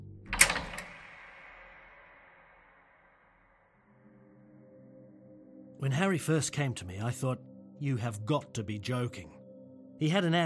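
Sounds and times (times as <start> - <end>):
door being locked with a metallic clunk: 0.3 - 1.9
speech: 5.8 - 9.4, 10.0 - 10.4.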